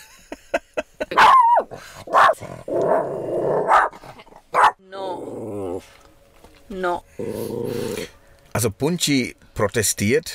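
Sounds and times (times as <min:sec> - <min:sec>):
small female dog barking agitatedly at dogs outside: 0:01.2 - 0:02.4, 0:03.6 - 0:04.8
speech: 0:06.8 - 0:07.8, 0:08.6 - 0:10.3.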